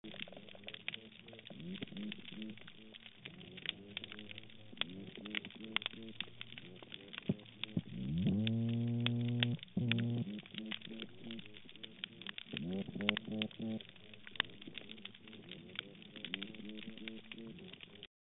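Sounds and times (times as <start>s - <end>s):
Bocon toadfish chorus: 0.0s - 18.1s.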